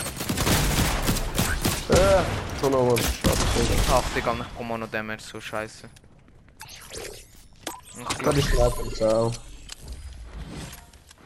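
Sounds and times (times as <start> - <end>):
video game sniper rifle gunshots: 0.0 - 4.6
busy background of video game noise: 0.0 - 11.2
speech: 1.9 - 6.0, 8.0 - 9.5.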